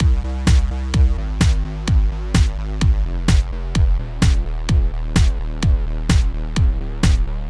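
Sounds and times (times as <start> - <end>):
sidechained bass: 0.0 - 7.4.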